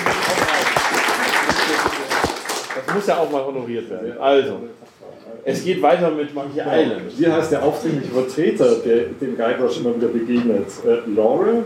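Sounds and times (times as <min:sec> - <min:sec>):
live quiz-show audience applause: 0:00.0 - 0:03.3
speech: 0:02.9 - 0:11.6.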